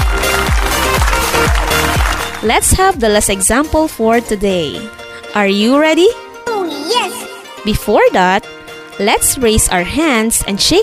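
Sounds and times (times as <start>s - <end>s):
crowd clapping: 0.0s - 2.7s
low thumping beat: 0.0s - 4.8s
speech: 2.4s - 6.2s, 6.9s - 10.8s.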